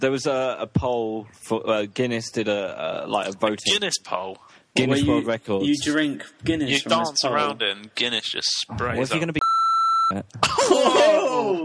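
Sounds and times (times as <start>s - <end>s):
speech: 0.0s - 9.5s, 10.1s - 11.6s
censor bleep tone: 9.4s - 10.2s
laughter: 10.4s - 11.6s.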